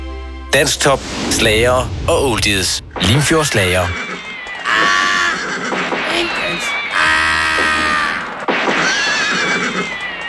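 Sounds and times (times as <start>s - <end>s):
speech: 0.5s - 4.1s
horse neighing: 3.9s - 10.1s.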